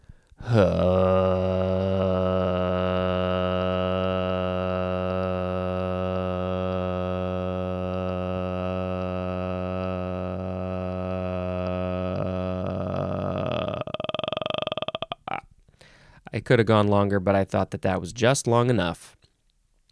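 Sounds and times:
speech: 0:00.4 - 0:01.0, 0:16.4 - 0:19.2
single voice humming a low steady droning tone imitating a drone: 0:00.4 - 0:15.4.

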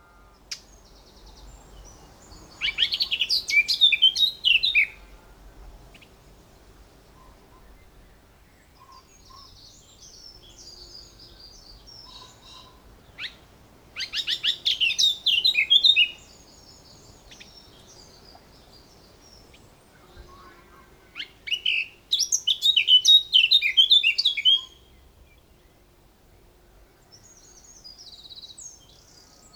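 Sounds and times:
bird song with fast chaotic chirrups and trills: 0:00.0 - 0:29.5.

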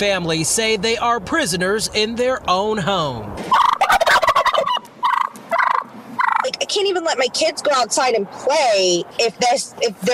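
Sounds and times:
speech: 0:00.0 - 0:03.7, 0:07.0 - 0:10.1
wild turkeys gobbling: 0:03.5 - 0:06.6.

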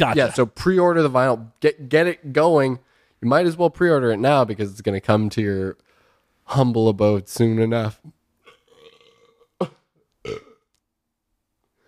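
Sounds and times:
speech: 0:00.0 - 0:05.8, 0:06.5 - 0:08.2, 0:09.6 - 0:10.4
long burp and shorter punchy belches: 0:08.4 - 0:10.7.

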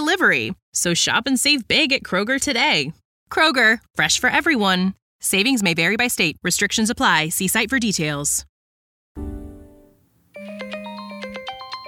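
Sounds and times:
speech: 0:00.1 - 0:08.5, 0:09.2 - 0:09.4
brief low tone: 0:09.2 - 0:11.8
phone ringing with bright melodic electronic ringtone: 0:10.4 - 0:11.8.

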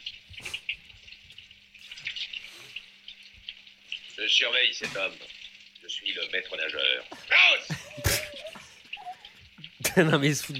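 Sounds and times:
shower water running: 0:00.0 - 0:10.5
speech: 0:04.2 - 0:08.2, 0:10.0 - 0:10.5
laughter: 0:07.2 - 0:08.8.

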